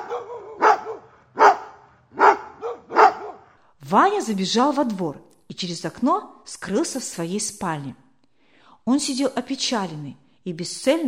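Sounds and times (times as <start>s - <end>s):
dog barking: 0.0s - 3.6s
speech: 3.9s - 8.0s, 8.8s - 11.0s.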